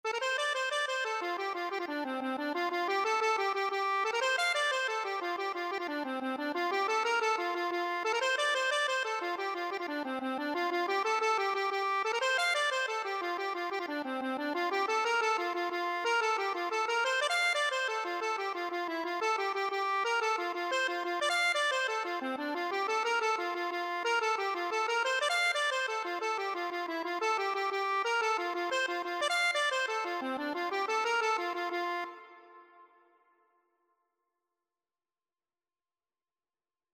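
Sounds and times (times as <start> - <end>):
accordion: 0.1 - 33.0.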